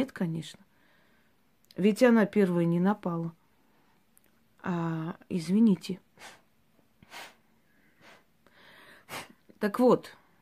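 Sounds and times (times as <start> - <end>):
speech: 0.0 - 0.7, 1.8 - 3.4, 4.6 - 6.4, 7.1 - 7.3, 9.1 - 10.2
quiet breathing: 0.6 - 1.6, 3.4 - 4.2, 6.0 - 9.5
short sharp nervous sniffs through the nose: 6.2 - 9.4.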